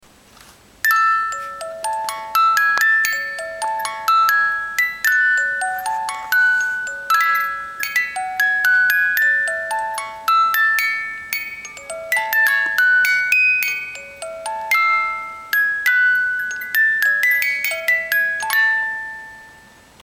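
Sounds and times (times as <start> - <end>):
18-note music box playing a hymn: 0.8 - 20.0.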